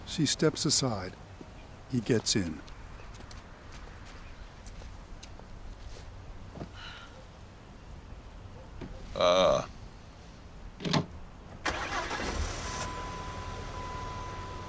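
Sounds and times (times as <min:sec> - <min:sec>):
speech: 0:00.2 - 0:01.2, 0:01.9 - 0:02.7
car engine with a brand-new battery cranking: 0:11.5 - 0:13.8
car engine idling: 0:11.5 - 0:14.6.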